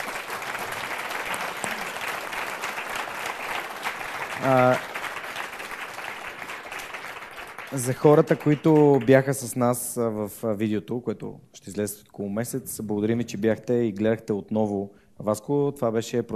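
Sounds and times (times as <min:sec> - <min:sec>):
audience applause: 0:00.0 - 0:09.5
speech: 0:04.4 - 0:04.9, 0:07.7 - 0:16.3.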